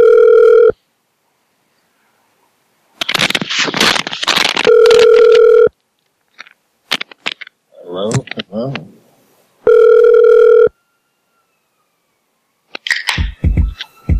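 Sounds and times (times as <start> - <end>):
electronic ringback tones of an outgoing phone call to a ward in London: 0.0 - 0.8, 4.6 - 5.7, 9.6 - 10.8
rustling, scraping phone handling noise: 2.9 - 8.5.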